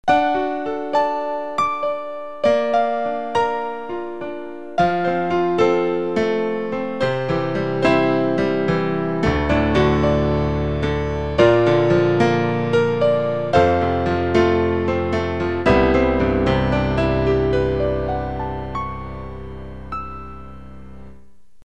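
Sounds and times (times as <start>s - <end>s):
synthesizer piano factory preset: 0.0s - 21.4s.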